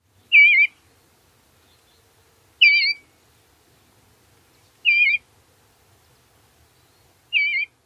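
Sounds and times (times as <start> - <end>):
bluebird singing: 0.2 - 0.8, 1.6 - 3.1, 4.5 - 5.2, 6.7 - 7.8.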